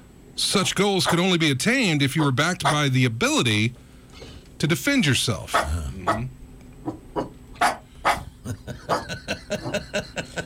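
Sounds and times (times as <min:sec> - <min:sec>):
speech: 0:00.4 - 0:03.8, 0:04.6 - 0:07.0
dog barking: 0:02.6 - 0:02.8, 0:05.5 - 0:06.2, 0:06.8 - 0:08.3, 0:08.9 - 0:09.1
laughter: 0:08.3 - 0:10.4.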